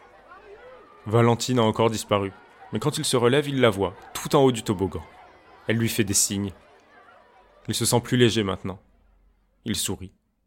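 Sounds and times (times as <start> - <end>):
laughter: 0.0 - 8.7
children's voices chattering and calling in a park: 0.0 - 9.6
murmur of overlapping speech: 0.0 - 9.6
speech: 1.0 - 6.7, 7.7 - 8.9, 9.6 - 10.2.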